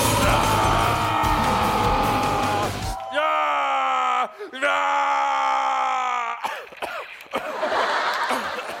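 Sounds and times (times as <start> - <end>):
man roaring and yelling wildly: 0.0 - 6.5
laughter: 7.2 - 8.7.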